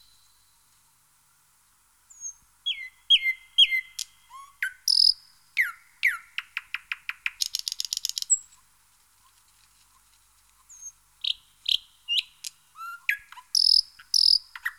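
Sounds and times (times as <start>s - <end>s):
thrush nightingale singing varied phrases: 0.0s - 0.7s, 2.0s - 8.8s, 10.6s - 14.7s.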